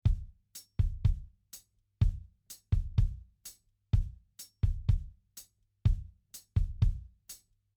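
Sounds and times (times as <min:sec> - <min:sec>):
bass drum in a simple drum groove: 0:00.0 - 0:01.3, 0:02.0 - 0:03.3, 0:04.0 - 0:05.1, 0:05.9 - 0:07.1
hi-hat in a simple drum groove: 0:00.0 - 0:01.8, 0:02.4 - 0:03.7, 0:04.3 - 0:05.6, 0:06.3 - 0:07.6.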